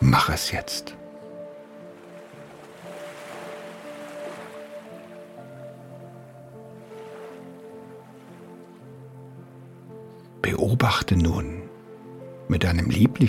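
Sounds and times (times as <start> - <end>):
speech: 0.2 - 1.0, 10.4 - 11.6, 12.5 - 13.2
soft ocean waves washing onto the shore: 1.2 - 10.1.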